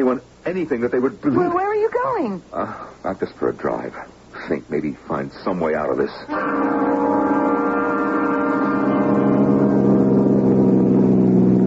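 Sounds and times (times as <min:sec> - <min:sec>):
speech: 0:00.0 - 0:07.2
convertible car engine droning with top down: 0:06.3 - 0:11.6.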